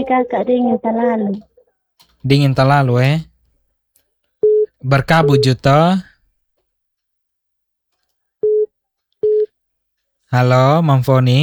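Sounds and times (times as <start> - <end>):
speech: 0.0 - 1.5, 2.2 - 3.3, 4.8 - 6.1, 10.3 - 11.4
telephone busy tone after a dropped call: 8.4 - 9.5.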